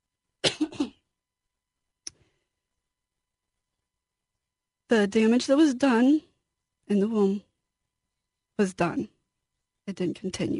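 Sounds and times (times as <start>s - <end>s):
person coughing: 0.4s - 1.1s
speech: 4.9s - 6.3s, 6.9s - 7.5s, 8.6s - 9.1s, 9.9s - 10.5s.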